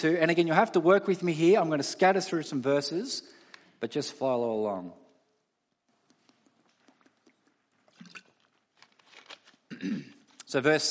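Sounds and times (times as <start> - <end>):
speech: 0.0 - 5.0, 9.8 - 10.8
plastic water bottle crinkling: 6.3 - 10.5
swallowing: 6.8 - 8.6
sipping water from a plastic water bottle: 7.2 - 8.6.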